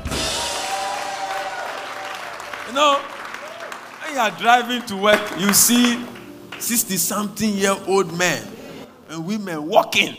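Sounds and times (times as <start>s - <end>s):
crowd applauding: 0.6s - 7.2s
speech: 2.7s - 3.2s, 4.1s - 10.1s.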